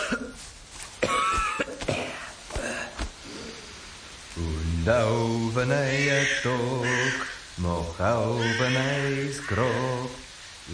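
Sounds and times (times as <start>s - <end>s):
person coughing hard and strained with wheezy catches: 0.0s - 0.4s, 1.0s - 3.0s
speech: 4.8s - 10.7s.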